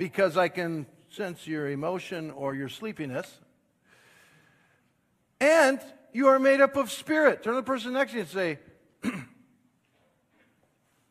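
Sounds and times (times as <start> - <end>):
speech: 0.0 - 3.4, 5.4 - 9.3
person clearing their throat: 9.0 - 9.5.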